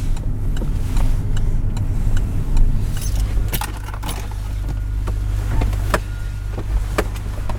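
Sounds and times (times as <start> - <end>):
car engine rumbling while parking at the port of Dunkirk: 0.0 - 7.5
car turn signal clicking: 0.0 - 7.5
light jingle of keys: 3.0 - 4.6.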